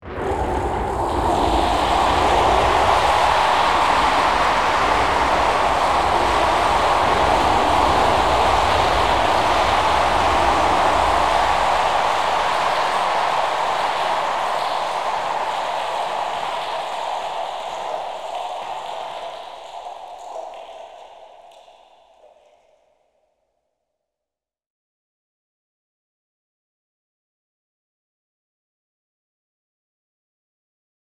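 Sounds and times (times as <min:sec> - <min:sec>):
hard rain: 0:00.1 - 0:21.9.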